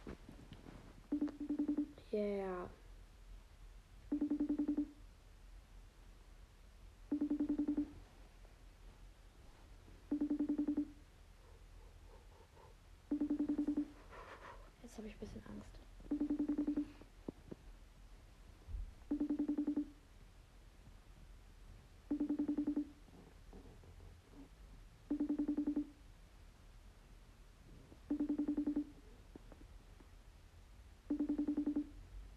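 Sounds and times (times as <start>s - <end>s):
speech: 0.0s - 0.3s, 2.1s - 2.8s
phone ringback tone: 1.1s - 2.0s, 4.1s - 5.0s, 7.1s - 8.0s, 10.1s - 11.0s, 13.1s - 14.0s, 16.0s - 17.0s, 19.1s - 20.0s, 22.1s - 23.0s, 25.1s - 26.0s, 28.1s - 29.0s, 31.1s - 32.0s.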